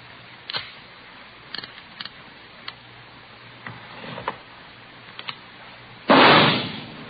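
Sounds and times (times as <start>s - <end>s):
.38 caliber revolver test-fired into a ballistics box: 6.1s - 7.0s.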